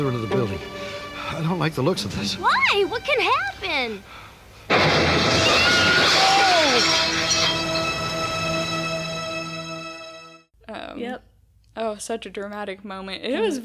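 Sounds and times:
speech: 0.0 - 7.6, 11.0 - 13.6
scattered debris: 4.7 - 8.9
window glass shattering: 4.7 - 9.5.

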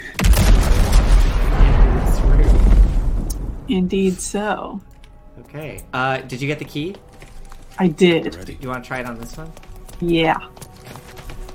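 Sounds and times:
video game gas vent explosion with rumbling roar: 0.2 - 4.1
speech: 3.7 - 7.1, 7.8 - 10.6.

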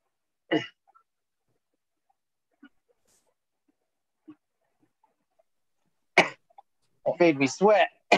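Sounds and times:
speech: 0.5 - 0.8, 7.2 - 8.1
person coughing harshly after smoking: 0.5 - 0.9.

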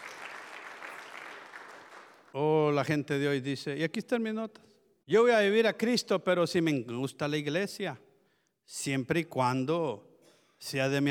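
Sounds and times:
audience applauding: 0.0 - 2.3
speech: 2.3 - 8.1, 8.7 - 11.1.

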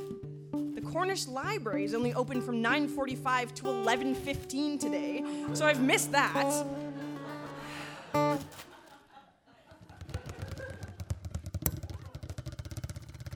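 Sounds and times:
speech: 0.9 - 6.8
person chuckling: 6.4 - 11.0.

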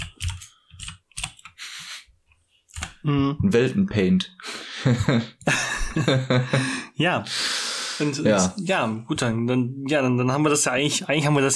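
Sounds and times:
typing on a computer keyboard: 0.0 - 1.6, 2.7 - 3.0
speech: 3.0 - 11.5
laughter: 4.6 - 7.0.

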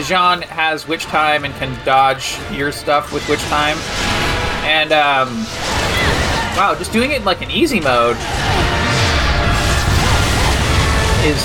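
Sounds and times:
speech: 0.0 - 5.8, 6.6 - 8.7, 11.2 - 11.4
skyscraper collapsing during a video game fight: 2.5 - 11.4.

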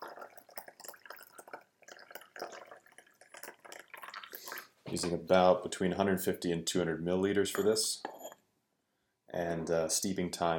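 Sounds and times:
water poured into a teapot: 0.0 - 4.7
speech: 4.9 - 8.1, 9.4 - 10.5.

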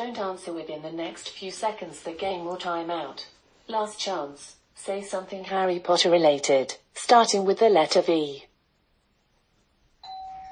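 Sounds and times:
speech: 0.0 - 8.5
doorbell ringing with a sustained electronic chime: 10.0 - 10.5.

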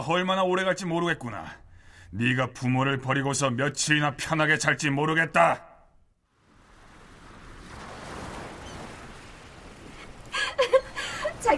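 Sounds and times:
speech: 0.0 - 5.7
ocean surf on a beach: 6.3 - 11.5
laughter: 10.3 - 11.5.

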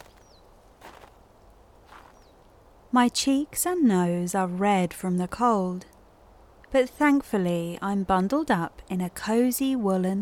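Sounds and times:
footsteps crunching in fresh snow: 0.0 - 1.2, 1.8 - 2.3
faint bird chirps: 2.0 - 2.4
speech: 2.9 - 5.9, 6.7 - 10.2.

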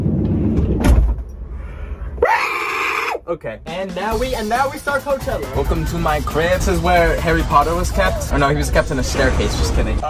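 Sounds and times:
van sliding door rumbling and slamming shut: 0.5 - 1.3
high-pitched scream from the person who closed the door: 2.2 - 3.2
speech: 3.3 - 10.0.

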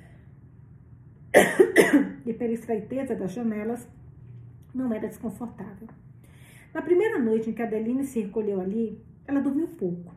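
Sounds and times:
harsh coughs: 1.3 - 2.2
speech: 2.4 - 4.0, 4.7 - 6.0, 6.7 - 10.1.

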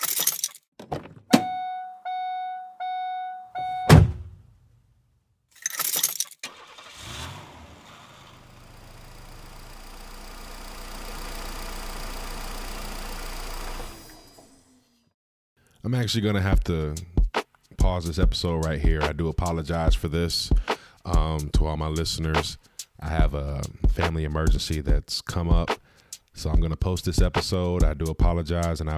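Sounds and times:
clunks: 0.8 - 1.6
car door thunking shut: 3.8 - 4.4
car engine starting and idling: 6.4 - 14.9
speech: 15.9 - 17.2, 17.9 - 25.8, 26.4 - 28.9.

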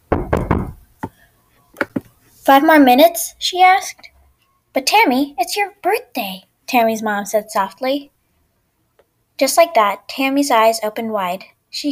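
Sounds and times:
knocking on a bedroom door: 0.0 - 0.8
speech: 2.5 - 4.1, 4.8 - 8.1, 9.4 - 11.8.

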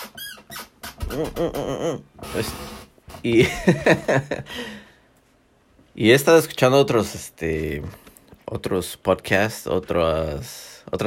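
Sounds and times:
office chair creaking: 0.0 - 3.3
speech: 1.1 - 4.8, 6.0 - 11.0.

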